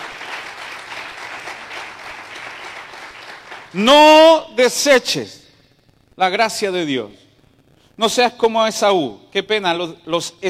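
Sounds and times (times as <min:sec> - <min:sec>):
audience applauding: 0:00.0 - 0:03.8
speech: 0:03.7 - 0:05.4, 0:06.2 - 0:07.2, 0:08.0 - 0:10.4.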